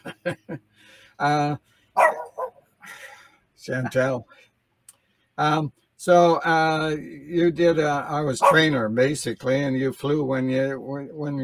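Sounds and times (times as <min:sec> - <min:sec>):
speech: 0:00.2 - 0:02.1, 0:03.6 - 0:04.5, 0:05.4 - 0:11.4
dog barking: 0:02.0 - 0:02.6, 0:08.4 - 0:08.8.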